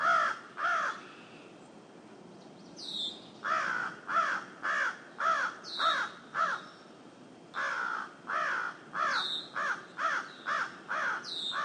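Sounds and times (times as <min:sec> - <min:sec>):
crow cawing: 0:00.0 - 0:01.1, 0:03.4 - 0:06.7, 0:07.6 - 0:11.6.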